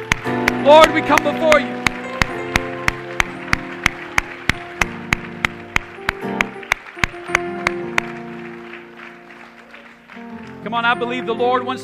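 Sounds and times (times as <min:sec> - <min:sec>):
crowd clapping in unison to a steady beat: 0:00.0 - 0:11.0
instruments playing sustained musical tones: 0:00.0 - 0:11.8
speech: 0:00.7 - 0:01.9, 0:10.7 - 0:11.8.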